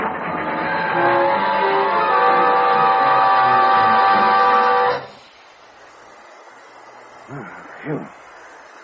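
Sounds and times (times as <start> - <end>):
train braking hard on a curve with metallic screech: 0.0 - 5.4.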